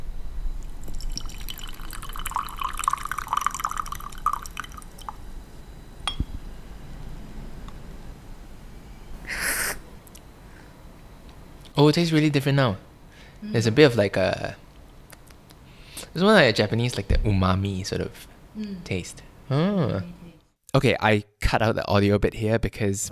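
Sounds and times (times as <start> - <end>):
tea pouring from a gaiwan: 0.6 - 5.2
tea dripping: 0.7 - 5.2
speech: 11.8 - 12.9, 13.4 - 14.6, 16.1 - 23.0.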